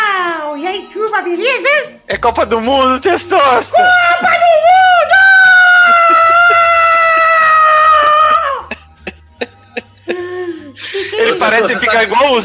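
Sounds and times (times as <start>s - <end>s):
speech: 0.8s - 4.4s, 11.6s - 12.4s
man screaming excitedly imitating a cartoonish character's yell: 3.3s - 8.7s
breathy panting or laughter: 8.7s - 11.4s.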